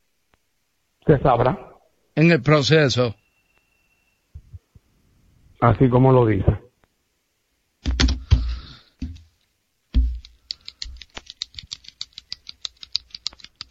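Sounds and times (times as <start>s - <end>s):
speech: 1.0s - 3.2s, 5.6s - 6.6s
pen knocks and scrapes from fidgeting: 7.8s - 9.3s, 9.9s - 11.3s
pen clicks and taps from fidgeting: 10.0s - 13.7s.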